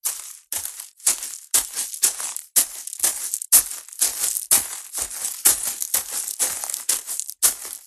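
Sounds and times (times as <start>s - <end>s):
footsteps crunching: 0.0s - 7.8s.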